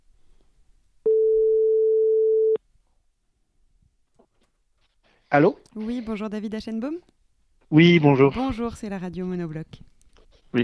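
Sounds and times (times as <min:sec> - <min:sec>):
telephone ringback tone of an outgoing call: 0:01.1 - 0:02.6
speech: 0:05.3 - 0:09.9.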